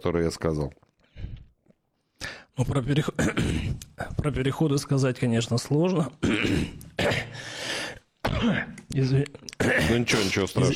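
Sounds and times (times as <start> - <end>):
speech: 0.0 - 0.9, 2.6 - 7.7, 8.4 - 10.7
harsh breathy coughing: 3.2 - 3.8, 6.2 - 7.6, 8.2 - 8.8, 9.6 - 10.5.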